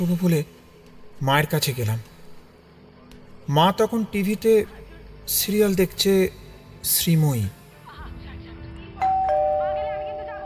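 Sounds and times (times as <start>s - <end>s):
speech: 0.0s - 0.6s, 1.2s - 2.1s, 3.5s - 7.6s
two-tone home doorbell ding-dong chime: 9.0s - 10.4s.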